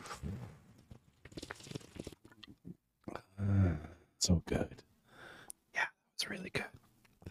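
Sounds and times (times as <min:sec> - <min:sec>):
person slurping and gulping beer from a bottle: 0:00.0 - 0:02.8
small mouth clicks and swallows: 0:00.2 - 0:02.8
speech: 0:04.2 - 0:04.9, 0:06.3 - 0:06.8.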